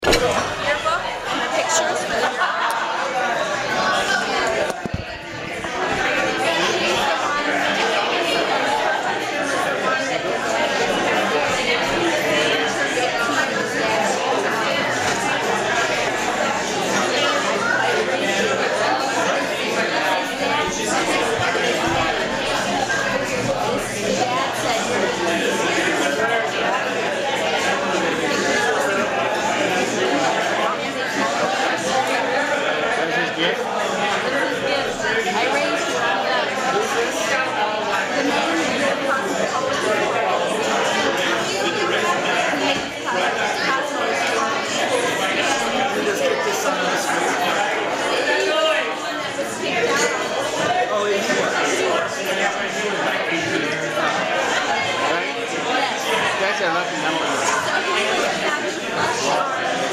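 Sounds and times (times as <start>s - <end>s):
busy background noise: 0.0s - 59.9s.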